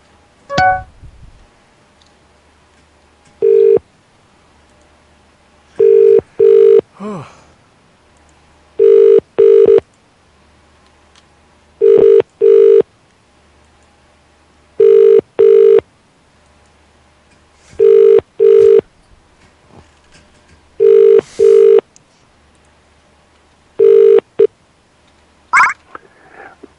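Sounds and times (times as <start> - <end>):
ringback tone of an unanswered outgoing phone call: 0.5 - 0.9, 3.4 - 3.8, 5.8 - 6.8, 8.8 - 9.8, 11.8 - 12.8, 14.8 - 15.8, 17.8 - 18.8, 20.8 - 21.8, 23.8 - 24.2, 25.6 - 25.8.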